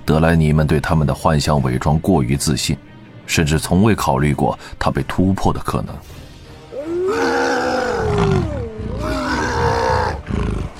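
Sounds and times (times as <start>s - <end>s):
speech: 0.1s - 6.2s
orc wolf riders roaring war cries while charging: 6.7s - 10.7s
wolves howling: 6.7s - 10.7s.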